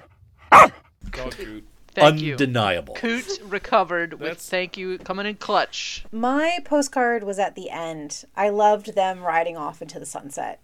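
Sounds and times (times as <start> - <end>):
single sharp loud dog bark: 0.0 - 0.8
speech: 0.6 - 10.6.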